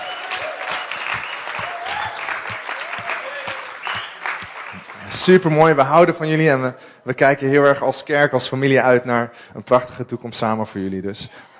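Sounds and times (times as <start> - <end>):
cheers and whoops: 0.0 - 4.4
room full of people applauding: 0.0 - 5.6
speech: 5.2 - 11.5.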